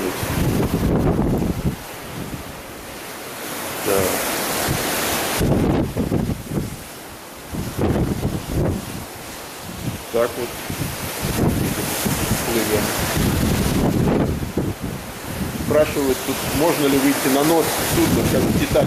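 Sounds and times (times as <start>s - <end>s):
strong wind blowing over open water: 0.0s - 18.8s
speech: 10.2s - 10.6s, 15.8s - 18.8s.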